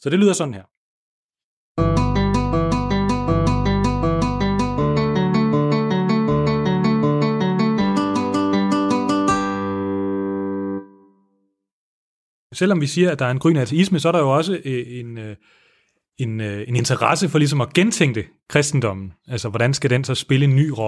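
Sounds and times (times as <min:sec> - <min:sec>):
speech: 0:00.0 - 0:00.8, 0:12.6 - 0:15.6, 0:16.2 - 0:20.8
guitar playing an Alberti bass figure in a minor key: 0:01.8 - 0:11.2.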